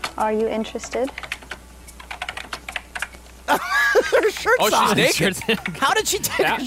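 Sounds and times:
speech: 0.2 - 1.4, 3.5 - 6.6
loud typing on a computer keyboard: 0.8 - 3.2
laughter: 3.5 - 6.6.

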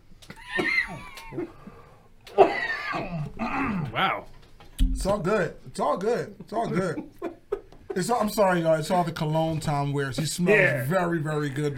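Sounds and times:
person coughing fit with rough raspy coughs: 0.4 - 1.6, 2.4 - 4.0
speech: 1.3 - 1.6, 4.0 - 4.4, 5.0 - 7.3, 8.0 - 11.7.

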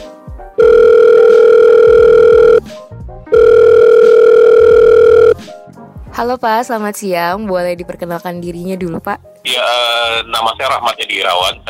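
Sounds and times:
telephone line tone as a phone call connects: 0.6 - 2.7, 3.3 - 5.4
speech: 6.2 - 11.6.

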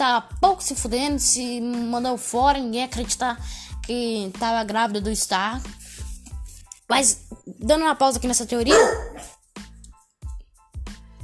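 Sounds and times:
speech: 0.0 - 5.8, 6.9 - 9.3
dog barking: 8.7 - 9.4.

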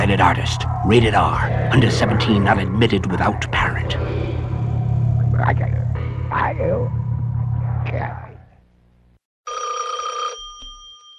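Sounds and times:
low rumbling whoosh: 0.0 - 9.0
speech: 0.1 - 4.1, 5.4 - 7.0
telephone ringing: 9.5 - 11.1.

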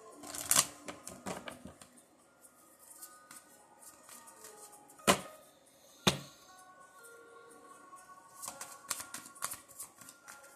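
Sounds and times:
deck of angel cards being shuffled: 0.2 - 1.9, 3.3 - 5.2, 8.4 - 10.5.

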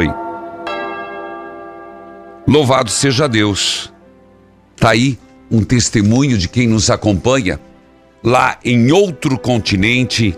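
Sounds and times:
speech: 0.0 - 0.2, 2.5 - 4.0, 4.8 - 10.3
church bell rung by the sacristan: 0.0 - 4.6.

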